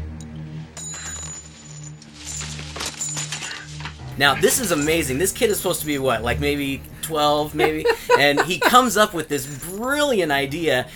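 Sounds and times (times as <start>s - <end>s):
coins dropping and clattering onto a hard surface: 0.8s - 3.8s
laughter: 4.2s - 10.8s
speech: 4.2s - 10.9s.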